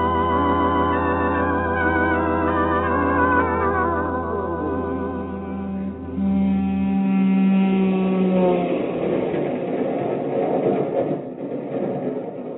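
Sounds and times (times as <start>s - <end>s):
loud drawn-out horn-like tone: 0.0s - 9.6s
train rumbling along the rails: 0.0s - 12.5s.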